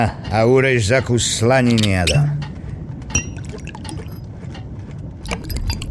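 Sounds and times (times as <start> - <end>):
speech: 0.0 - 2.5
glass clinking: 3.1 - 4.3
rum pouring into a glass: 3.2 - 4.2.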